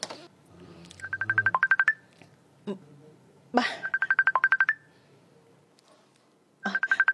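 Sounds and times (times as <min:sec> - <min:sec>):
cellphone ringing with rapid bright electronic beeps for an incoming call: 0:01.0 - 0:02.0, 0:03.8 - 0:04.8, 0:06.7 - 0:07.0.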